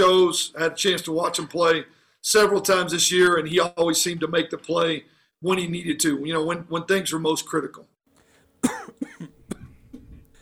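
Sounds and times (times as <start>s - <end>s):
speech: 0.0s - 8.0s
person coughing and hacking: 8.6s - 9.8s.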